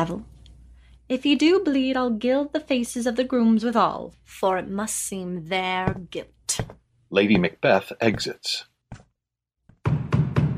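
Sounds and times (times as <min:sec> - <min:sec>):
speech: 0:00.0 - 0:00.3, 0:01.1 - 0:08.7
heavy booming knocks: 0:05.7 - 0:08.3.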